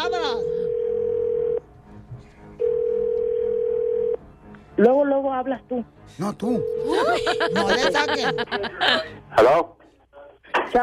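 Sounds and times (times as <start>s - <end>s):
telephone dial tone while redialing: 0.5s - 1.6s, 2.6s - 4.2s
speech: 4.8s - 9.8s, 10.7s - 10.8s
laughter: 6.9s - 9.2s.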